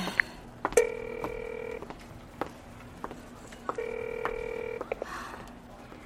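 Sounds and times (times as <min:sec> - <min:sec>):
faint hum: 0:00.0 - 0:06.0
telephone ringback tone: 0:00.8 - 0:01.9, 0:03.8 - 0:04.9.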